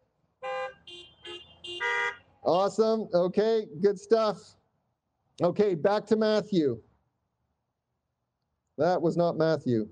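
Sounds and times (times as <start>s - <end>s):
several car horns honking: 0.4s - 2.4s
speech: 2.5s - 4.6s, 5.4s - 6.9s, 8.8s - 9.9s.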